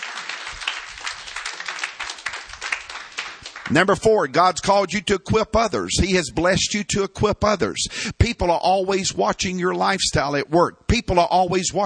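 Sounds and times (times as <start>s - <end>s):
audience clapping hands: 0.0s - 4.1s
speech: 3.7s - 11.8s.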